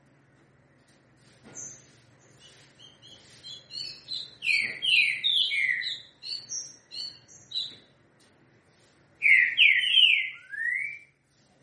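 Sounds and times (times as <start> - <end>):
green-winged saltator three-note song of clear whistled notes: 2.4 - 7.9, 9.2 - 11.2.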